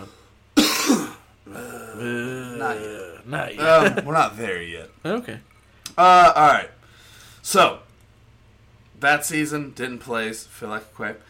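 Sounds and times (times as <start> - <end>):
raspy throat clearing: 0.6 - 2.0
speech: 2.0 - 6.8, 7.4 - 7.8, 9.0 - 11.2.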